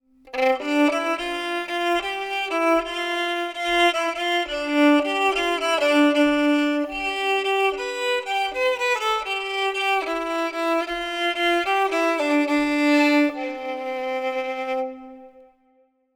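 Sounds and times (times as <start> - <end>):
violin with reverb: 0.1 - 15.8.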